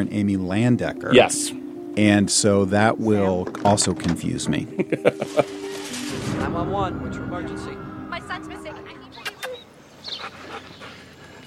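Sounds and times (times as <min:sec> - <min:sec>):
speech: 0:00.0 - 0:08.6
laughter: 0:04.6 - 0:05.8
dog whimpering: 0:09.3 - 0:10.9
dog panting: 0:09.4 - 0:11.4.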